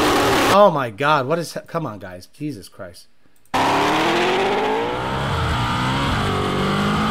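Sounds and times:
speech: 0.6 - 4.6
Ford Mustang S650 engine droning with dual-clutch transmission struggling to find gear: 3.6 - 7.0.

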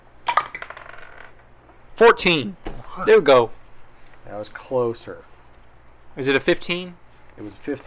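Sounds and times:
dice clattering across a hard tabletop: 0.3 - 1.4
speech: 2.0 - 3.6, 4.3 - 5.3, 6.2 - 7.8.

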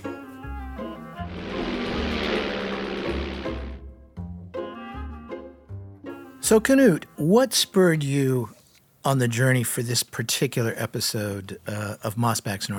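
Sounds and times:
airplane taking off: 1.1 - 4.1
steady tonal sounds: 1.2 - 4.0
speech: 6.4 - 12.7.

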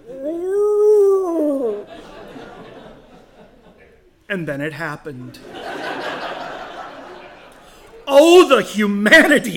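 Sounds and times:
voice imitating a dog's drawn-out moan during a car trip: 0.0 - 1.9
laughter: 1.4 - 4.1, 5.4 - 7.9
speech: 4.3 - 5.6, 8.2 - 9.5.

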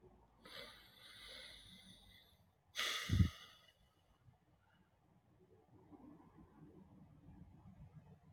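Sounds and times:
faint steady noise: 0.0 - 8.3
slow quiet breathing during a short meditation: 0.4 - 3.9.

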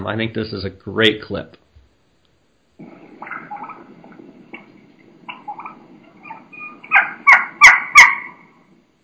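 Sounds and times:
speech: 0.0 - 1.6
young turkey hen giving high-pitched keeking calls: 2.8 - 9.0.

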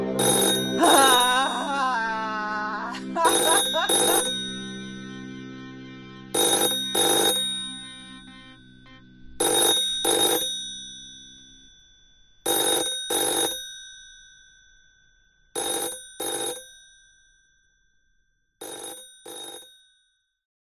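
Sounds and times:
old-style telephone bell ringing in double-ring pattern: 0.0 - 1.7, 3.2 - 4.8, 6.3 - 8.7, 9.4 - 11.1, 12.5 - 13.8, 15.6 - 16.9, 18.6 - 20.0
laughter: 0.6 - 4.3.

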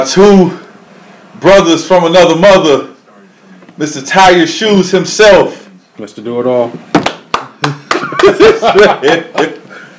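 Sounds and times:
speech: 0.0 - 0.6, 1.4 - 2.9, 3.8 - 6.9, 7.6 - 9.6
man clapping hands: 7.0 - 8.6, 9.3 - 9.6
laughter: 7.7 - 9.6.

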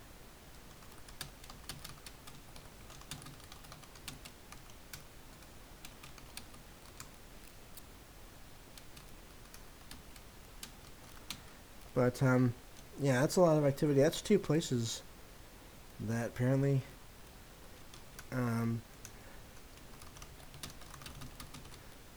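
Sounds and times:
typing on a computer keyboard: 0.7 - 7.6, 8.7 - 11.5, 18.9 - 21.9
speech: 12.0 - 15.1, 16.0 - 16.9, 18.3 - 18.9.

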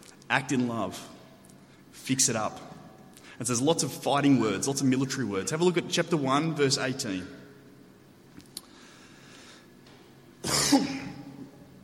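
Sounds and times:
speech: 0.3 - 1.2, 2.1 - 2.8, 3.4 - 7.4
harsh cough: 10.4 - 11.4.

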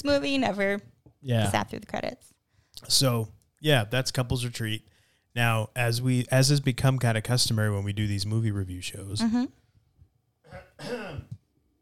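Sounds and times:
speech: 0.0 - 9.6, 10.5 - 11.4
person with a failing voice clearing throat: 10.5 - 11.4.

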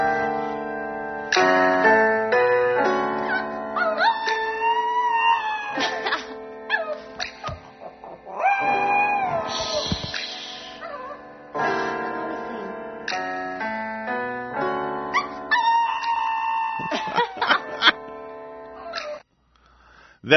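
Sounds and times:
karaoke music: 0.0 - 19.2
dog howling on a couch: 3.3 - 10.1, 10.7 - 11.3, 15.2 - 17.7.

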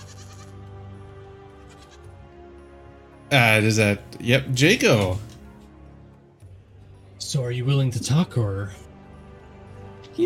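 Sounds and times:
goat bleating: 0.0 - 0.6, 1.6 - 2.1
speech: 3.3 - 5.3, 7.3 - 8.9.

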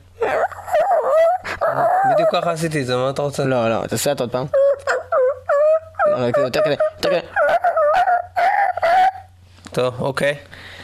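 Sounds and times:
human voice imitating a hurt dog whimpering: 0.0 - 2.8, 4.4 - 9.4
speech: 2.1 - 4.9, 6.2 - 7.6, 9.8 - 10.8
breaths: 10.5 - 10.8.

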